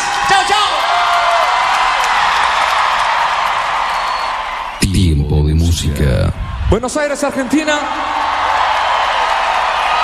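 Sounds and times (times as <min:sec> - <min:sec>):
crowd cheering and whooping: 0:00.0 - 0:05.0, 0:05.9 - 0:10.0
large crowd applauding: 0:00.0 - 0:05.0, 0:06.9 - 0:10.0
speech: 0:04.9 - 0:08.4.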